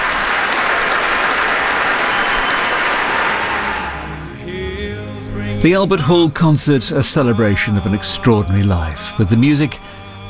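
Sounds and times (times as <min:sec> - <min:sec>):
concert hall audience applause: 0:00.0 - 0:04.3
speech: 0:05.6 - 0:10.0.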